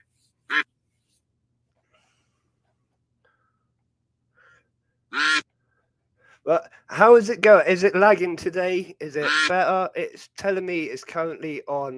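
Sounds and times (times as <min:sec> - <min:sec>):
faint duck calls: 0:00.5 - 0:00.7, 0:05.1 - 0:05.5, 0:09.2 - 0:09.6
ducks quacking: 0:05.1 - 0:05.4, 0:09.2 - 0:09.6
speech: 0:06.4 - 0:11.9.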